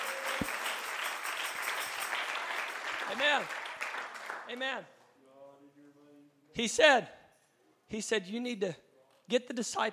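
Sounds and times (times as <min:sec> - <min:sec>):
crowd clapping hands: 0:00.0 - 0:04.8
speech: 0:03.1 - 0:03.6, 0:04.5 - 0:05.0, 0:06.6 - 0:07.2, 0:07.9 - 0:09.9.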